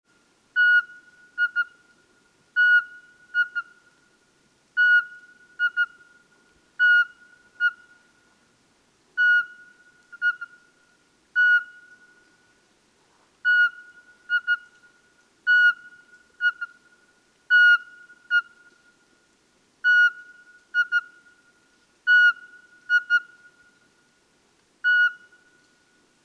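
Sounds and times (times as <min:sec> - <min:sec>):
Eurasian pygmy owl calling: 0:00.6 - 0:01.9, 0:02.6 - 0:03.9, 0:04.8 - 0:08.1, 0:09.2 - 0:10.8, 0:11.4 - 0:12.3, 0:13.4 - 0:18.8, 0:19.8 - 0:21.4, 0:22.1 - 0:23.8, 0:24.8 - 0:25.7.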